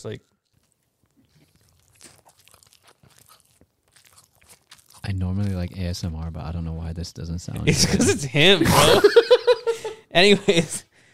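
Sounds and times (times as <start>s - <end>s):
speech: 0.0s - 0.4s, 5.1s - 9.4s, 10.1s - 10.8s
close biting and chewing of a slice: 0.0s - 6.3s
laughter: 7.7s - 10.8s.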